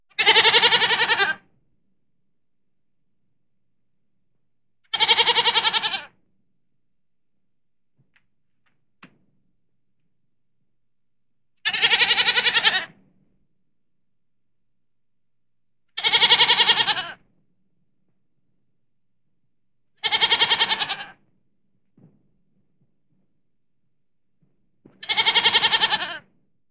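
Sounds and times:
lamb bleating: 0.2 - 1.4, 4.9 - 6.1, 11.7 - 12.9, 16.0 - 17.2, 20.0 - 21.2, 25.0 - 26.2.

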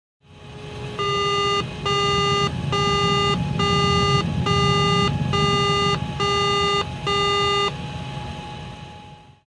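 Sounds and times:
cockpit ambience: 0.4 - 9.2
cockpit beep: 1.0 - 7.8.

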